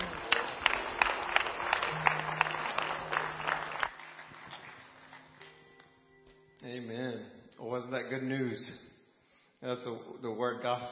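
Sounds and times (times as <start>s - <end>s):
audience applauding: 0.0s - 5.8s
speech: 6.8s - 8.9s, 9.6s - 10.9s.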